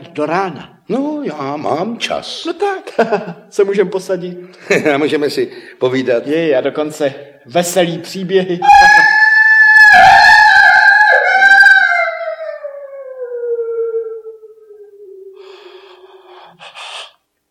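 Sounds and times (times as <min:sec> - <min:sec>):
speech: 0:00.2 - 0:09.2
wolf-like howl: 0:08.6 - 0:15.4.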